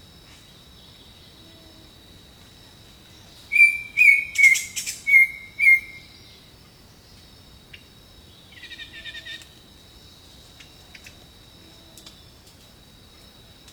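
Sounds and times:
steady high insect-like hiss: 0:00.0 - 0:13.7
birds calling in a jungle: 0:03.5 - 0:06.1.

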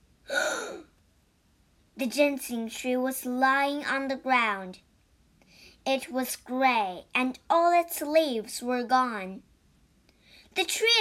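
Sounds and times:
gasp of shock: 0:00.3 - 0:00.9
speech: 0:02.0 - 0:04.9, 0:05.8 - 0:09.5, 0:10.6 - 0:10.9.

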